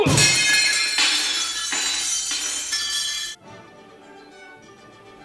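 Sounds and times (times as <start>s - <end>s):
small mirror shattering: 0.1s - 3.4s
glass fragments tinkling: 0.2s - 3.4s.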